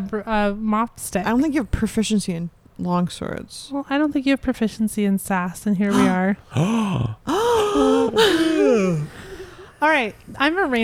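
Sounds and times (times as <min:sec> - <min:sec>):
speech: 0:00.0 - 0:09.1, 0:09.8 - 0:10.8
person yawning loudly: 0:05.9 - 0:09.6.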